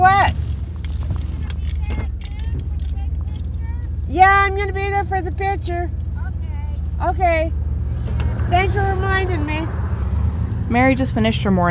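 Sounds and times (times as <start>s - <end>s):
faint rattles in truck cabin: 0.0s - 3.7s
truck engine rumble in cabin while driving: 0.0s - 11.6s
speech: 4.5s - 6.0s, 7.0s - 7.6s, 8.5s - 9.8s, 10.7s - 11.6s.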